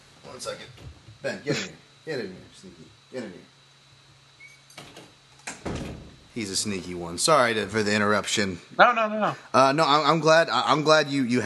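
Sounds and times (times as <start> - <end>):
faint low hum: 0.0 - 11.4
speech: 0.4 - 3.6, 6.4 - 11.4
door pushed shut: 4.5 - 6.3.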